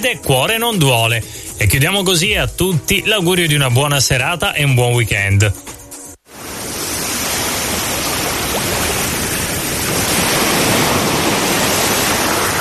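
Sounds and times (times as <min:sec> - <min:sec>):
speech: 0:00.0 - 0:05.8
sea waves washing on the shore: 0:06.3 - 0:12.5.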